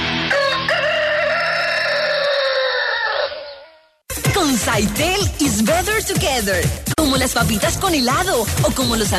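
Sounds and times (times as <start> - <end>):
rooster crowing loudly: 0.2 - 4.0
speech: 4.8 - 9.1.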